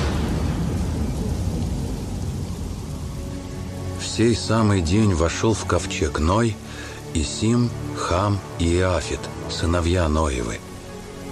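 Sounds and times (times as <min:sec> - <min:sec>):
deep continuous rumble of thunder: 0:00.0 - 0:04.5
heavy rain: 0:00.0 - 0:11.2
speech: 0:04.2 - 0:10.7.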